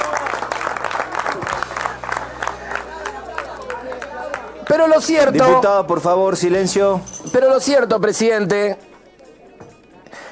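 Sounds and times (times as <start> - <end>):
applause from a large group in a legislative chamber: 0.0 - 5.6
cheering in a legislative chamber: 0.0 - 6.6
crowd murmur in a legislative chamber: 0.0 - 10.3
laughter: 0.0 - 10.3
speech: 4.8 - 8.9.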